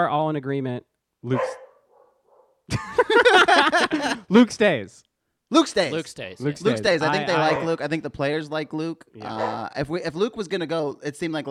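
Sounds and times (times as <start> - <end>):
speech: 0.0 - 1.6, 2.7 - 11.4
dog yelping: 1.4 - 2.6, 7.3 - 7.8, 9.2 - 9.7
laughter: 2.7 - 4.4.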